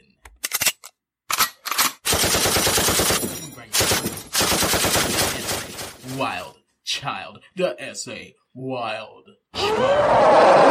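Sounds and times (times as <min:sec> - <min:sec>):
rapid automatic gunfire sound effects: 0:02.0 - 0:06.1
speech: 0:06.2 - 0:10.6.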